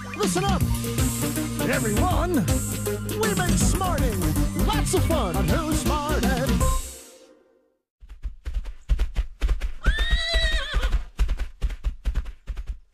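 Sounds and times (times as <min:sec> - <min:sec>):
speech: 0:00.2 - 0:06.8
galloping horse's hooves pounding: 0:08.1 - 0:12.9
loud wavering horse whinny: 0:09.8 - 0:10.9.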